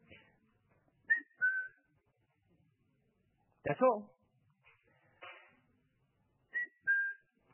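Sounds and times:
person whistling a two-note family call: 1.1 - 1.8, 6.5 - 7.4
speech: 3.6 - 4.2.

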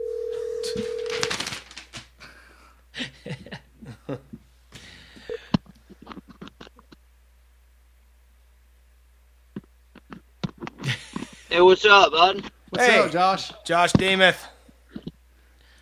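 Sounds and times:
brief steady phone tone: 0.0 - 1.3
laughter: 3.0 - 4.4, 10.8 - 11.5
speech: 11.6 - 14.5.

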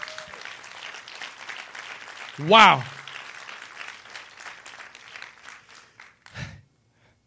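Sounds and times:
person whooping: 0.0 - 0.4
sustained applause from a crowd: 0.0 - 6.5
short spoken exclamation: 2.4 - 2.9
speech: 2.4 - 2.9.

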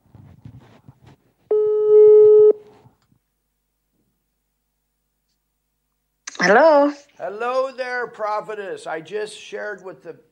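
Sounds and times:
telephone call ringing tone beep: 1.5 - 2.6
speech: 6.4 - 10.3.

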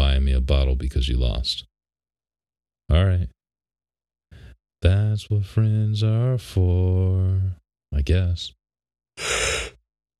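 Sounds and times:
speech: 0.4 - 1.7, 2.9 - 3.4, 4.8 - 8.6, 9.2 - 9.7
person yawning: 9.2 - 9.8.

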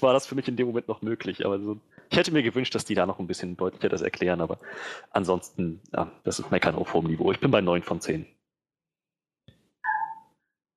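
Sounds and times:
speech: 0.0 - 8.4
small dog outside yipping: 9.8 - 10.3.

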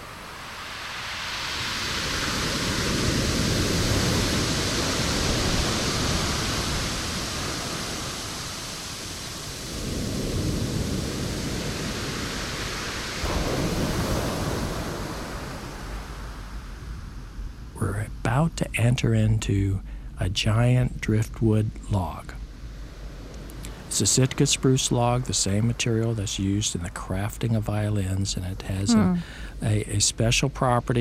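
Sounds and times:
ocean surf on a driftwood beach: 0.0 - 17.6, 22.7 - 27.2
speech: 18.4 - 22.4, 24.0 - 31.0.

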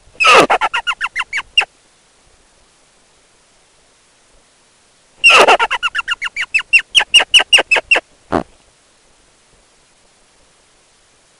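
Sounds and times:
rock hyrax song: 0.2 - 1.7, 5.2 - 8.4.

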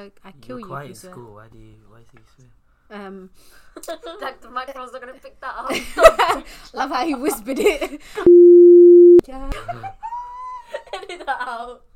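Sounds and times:
speech: 0.0 - 10.0, 11.1 - 11.9
mobile phone electronic beep tone: 8.3 - 9.2.

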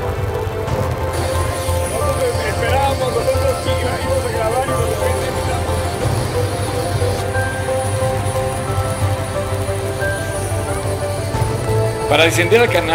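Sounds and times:
helicopter engine and rotor drone: 0.0 - 12.9
speech: 12.2 - 12.9.

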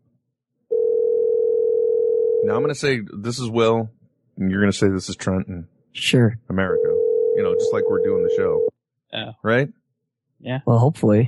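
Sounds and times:
phone line's electronic ringing tone of an outgoing call: 0.7 - 2.7, 6.7 - 8.7
speech: 2.4 - 9.8, 10.4 - 11.2.

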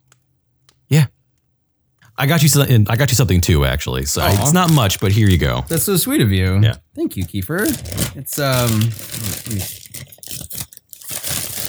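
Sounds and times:
speech: 0.9 - 1.1, 2.2 - 9.8
wrapping paper tearing and crinkling as a Christmas gift is opened: 4.1 - 6.1, 7.2 - 11.6.

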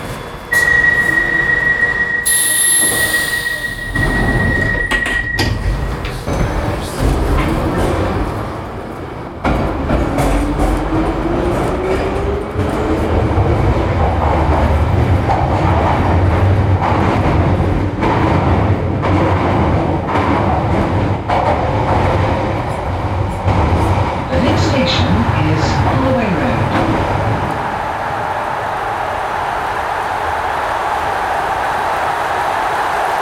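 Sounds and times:
London Underground Piccadilly line train running: 0.0 - 33.1
subway train high whine shifting pitch: 0.5 - 6.8.

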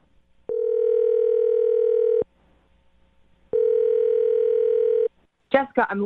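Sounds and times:
phone dial tone: 0.5 - 2.3, 3.5 - 5.1
speech: 5.6 - 6.0.

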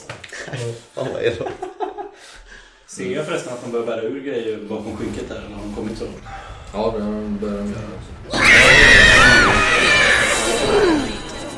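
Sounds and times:
speech: 0.5 - 1.6, 3.0 - 9.0
laughter: 0.5 - 2.3
horrible shrill scream from a hole: 8.3 - 11.4.

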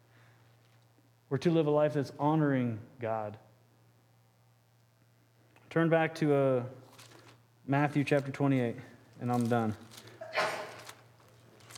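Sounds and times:
steady low electrical hum: 0.0 - 11.7
speech: 1.3 - 3.5, 5.7 - 6.8, 7.7 - 10.5
person sneezing: 10.2 - 10.9.

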